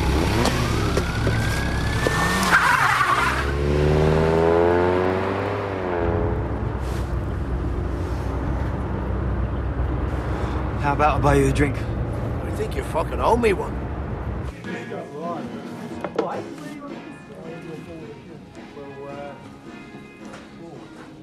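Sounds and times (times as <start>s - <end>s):
car engine revving hard while speeding away: 0.0s - 14.5s
road noise: 0.0s - 21.2s
speech: 11.0s - 12.0s, 12.6s - 13.8s.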